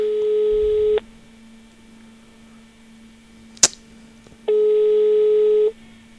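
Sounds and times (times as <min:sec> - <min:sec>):
telephone ringback tone of an unanswered call: 0:00.0 - 0:01.0, 0:04.5 - 0:05.8
faint low hum: 0:00.0 - 0:06.1
sharp click: 0:03.6 - 0:03.8.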